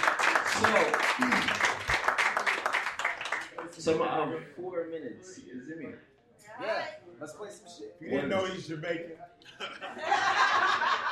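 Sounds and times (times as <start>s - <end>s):
crowd applauding: 0.0s - 3.8s
speech: 0.6s - 1.7s, 3.8s - 11.1s
laughter: 9.4s - 11.1s.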